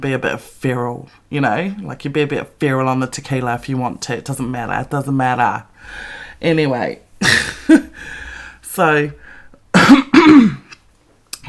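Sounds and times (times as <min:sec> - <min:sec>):
speech: 0:00.0 - 0:08.2, 0:08.8 - 0:09.2, 0:09.9 - 0:10.6
woman clearing her throat: 0:07.2 - 0:07.9, 0:09.8 - 0:10.8.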